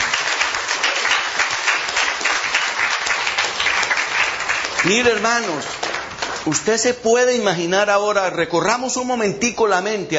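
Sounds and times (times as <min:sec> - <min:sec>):
audience applauding: 0:00.0 - 0:06.8
speech: 0:04.8 - 0:10.1.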